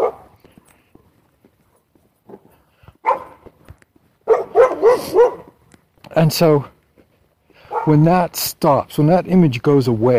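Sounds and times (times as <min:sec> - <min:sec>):
dog barking: 0:00.0 - 0:00.4, 0:03.0 - 0:03.4, 0:04.2 - 0:05.6, 0:07.7 - 0:08.0
speech: 0:05.0 - 0:05.4, 0:06.2 - 0:06.7, 0:07.9 - 0:10.1.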